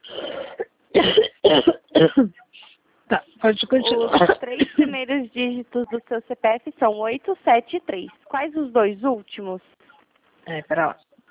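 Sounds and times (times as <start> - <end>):
person coughing: 0.0 - 2.4, 3.8 - 4.9
speech: 5.6 - 9.8, 10.5 - 11.1.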